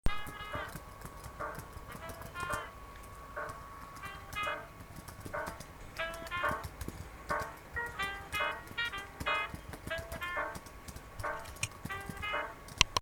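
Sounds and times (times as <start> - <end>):
music: 0.1 - 13.0
typing on a keyboard: 0.1 - 13.0.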